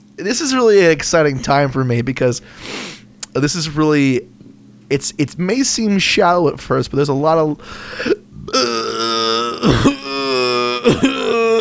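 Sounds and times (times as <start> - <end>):
speech: 0.2 - 8.8, 10.8 - 11.1
loud deep-voiced gurgling burp: 8.5 - 11.5
harsh coughs: 10.8 - 11.5.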